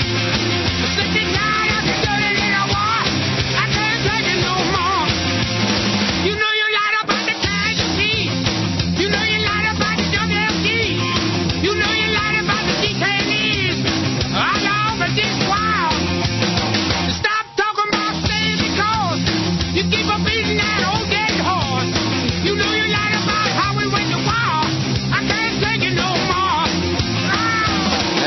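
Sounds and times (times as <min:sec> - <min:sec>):
loud driving rock song with full band and raw shouted vocals: 0:00.0 - 0:28.2.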